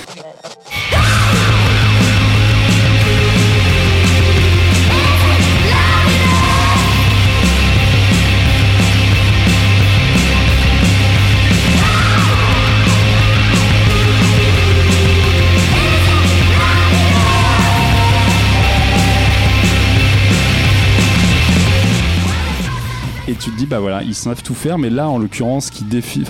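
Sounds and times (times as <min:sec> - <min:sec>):
screamed vocals: 0:00.7 - 0:04.0, 0:04.7 - 0:07.2, 0:11.6 - 0:14.8, 0:15.5 - 0:20.7
thick heavily distorted guitars: 0:00.7 - 0:23.3
loud punk rock song: 0:00.7 - 0:23.8
speech: 0:23.7 - 0:26.2.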